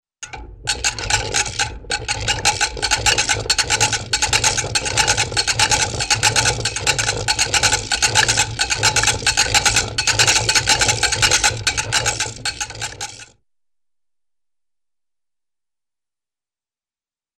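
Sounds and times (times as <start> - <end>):
cartoon engine struggling to start with wooden tone: 0.2 - 13.3.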